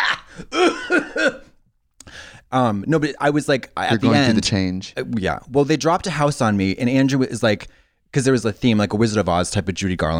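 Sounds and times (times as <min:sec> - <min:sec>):
person coughing: 0:00.4 - 0:01.6
speech: 0:02.5 - 0:10.1.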